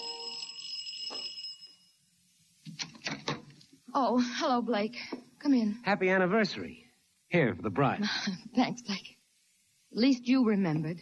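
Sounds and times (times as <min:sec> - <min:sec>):
apartment doorbell ringing with bright electronic tone: 0:00.0 - 0:02.1
speech: 0:04.0 - 0:09.1, 0:10.0 - 0:11.0.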